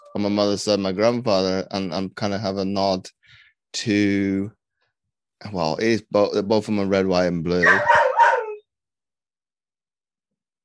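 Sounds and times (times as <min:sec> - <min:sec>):
speech: 0:00.1 - 0:04.6, 0:05.4 - 0:08.0
dog barking: 0:07.6 - 0:08.6.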